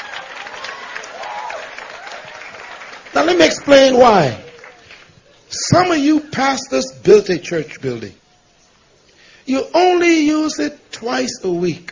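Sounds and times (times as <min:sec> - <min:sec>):
audience applause: 0:00.0 - 0:05.2
speech: 0:03.3 - 0:04.4, 0:05.7 - 0:08.2, 0:09.5 - 0:11.9.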